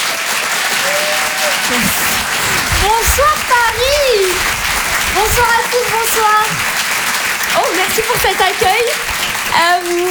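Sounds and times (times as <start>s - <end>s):
thunderous audience applause at a comedy and song evening show: 0.0s - 10.1s
speech: 3.0s - 4.6s, 5.2s - 6.7s, 7.6s - 10.1s.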